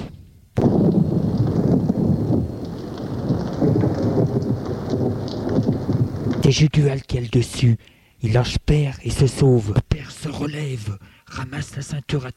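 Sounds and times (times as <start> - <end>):
thunder rumble: 0.0 - 7.7
heavy rain pouring over a muddy scene: 0.6 - 8.0
speech: 6.5 - 12.3.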